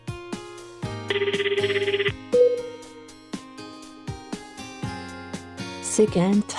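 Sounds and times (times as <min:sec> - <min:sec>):
electronic telephone ringing: 0:01.1 - 0:02.9
light music with a steady plucked beat: 0:01.1 - 0:05.0
speech: 0:01.2 - 0:01.9, 0:06.0 - 0:06.5.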